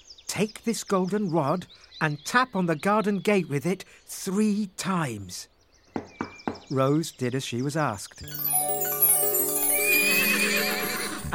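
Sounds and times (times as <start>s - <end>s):
speech: 0.4s - 6.1s, 6.7s - 8.6s
horse neighing: 9.8s - 11.3s.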